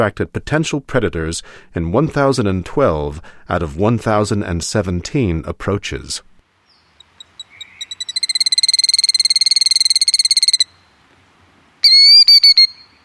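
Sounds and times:
speech: 0.0s - 6.3s
killdeer calls and trill: 6.7s - 10.9s, 11.8s - 13.0s.

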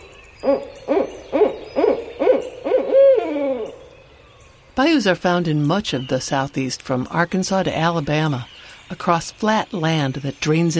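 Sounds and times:
barred owl hooting: 0.0s - 4.0s
speech: 0.4s - 1.2s, 4.8s - 10.7s.

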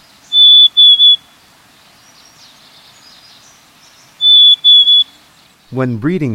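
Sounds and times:
quiet hiss: 0.0s - 6.3s
black-capped chickadee singing soft fee-bee spring song: 0.3s - 1.3s, 4.2s - 5.2s
speech: 5.7s - 6.3s.

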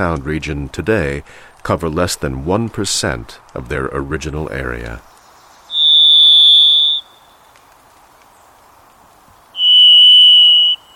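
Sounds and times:
speech: 0.0s - 5.1s
Varied Thrush song of long whistled tones in Pacific Northwest forest: 5.7s - 7.5s, 9.5s - 10.9s.

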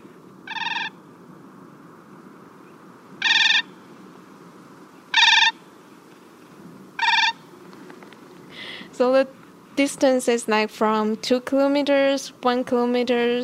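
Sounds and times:
Siberian cranes calling in flight on the Siberian tundra: 0.0s - 1.0s, 2.6s - 3.8s, 5.0s - 5.7s, 7.0s - 8.0s
speech: 9.0s - 13.4s.

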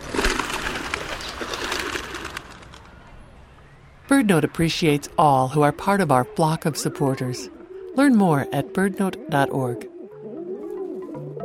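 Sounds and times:
startled flock of rock pigeons bursting into flight: 0.0s - 3.0s
speech: 4.1s - 9.9s.

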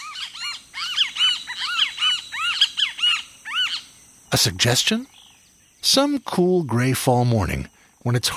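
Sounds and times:
great kiskadee calling at the forest edge in tropical Central America: 0.0s - 6.0s
speech: 4.3s - 5.1s, 5.8s - 8.3s.

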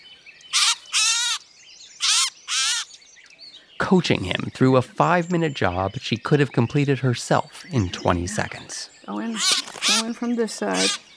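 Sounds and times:
gray catbird squawking while being untangled from a net: 0.5s - 3.0s, 7.6s - 11.1s
speech: 3.9s - 11.1s.

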